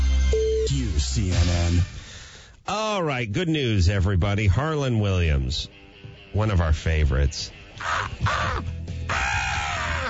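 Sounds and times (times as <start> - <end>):
speech: 0.7 - 2.0, 2.7 - 9.4
man imitating crow caws with his voice: 7.8 - 10.0.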